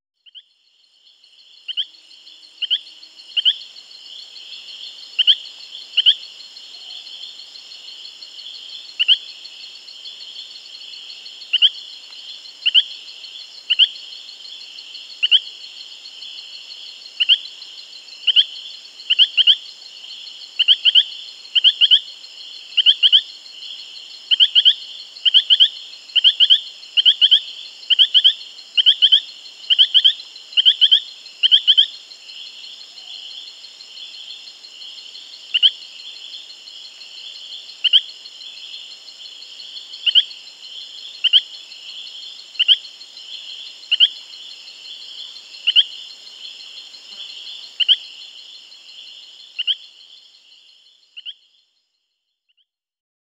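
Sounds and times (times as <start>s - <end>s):
Epipedobates femoralis frog calling: 1.6s - 3.8s, 4.4s - 7.3s, 8.5s - 9.4s, 10.9s - 12.0s, 12.6s - 14.1s, 15.2s - 15.6s, 17.2s - 23.4s, 24.2s - 33.5s, 35.5s - 36.5s, 37.2s - 38.8s, 39.6s - 51.6s.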